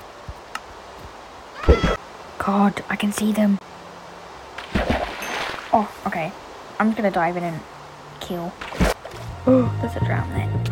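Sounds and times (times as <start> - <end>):
cat meowing: 1.6 - 2.0
speech: 1.6 - 3.6, 5.8 - 7.7, 8.3 - 10.6.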